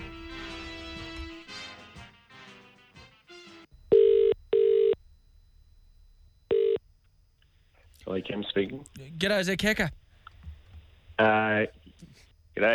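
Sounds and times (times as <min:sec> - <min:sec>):
electronic phone keypad dialing tones: 0:03.9 - 0:05.0, 0:06.5 - 0:06.8
speech: 0:08.2 - 0:10.0, 0:11.2 - 0:12.7.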